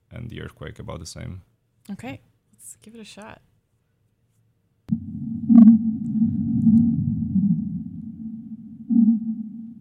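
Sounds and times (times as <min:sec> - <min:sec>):
speech: 0:00.3 - 0:03.5
continuous underwater rumbling: 0:04.9 - 0:09.8
sped-up underwater whale calls: 0:04.9 - 0:09.8.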